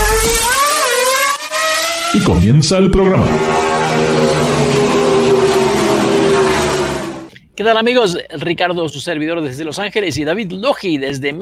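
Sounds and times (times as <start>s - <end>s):
car engine in first gear revving and accelerating: 0.0s - 7.3s
speech: 2.2s - 4.3s, 7.6s - 11.4s.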